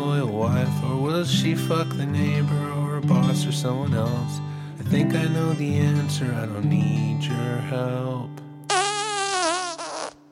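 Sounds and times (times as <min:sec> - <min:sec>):
speech: 0:00.4 - 0:08.4
buzzy fart: 0:08.7 - 0:10.2.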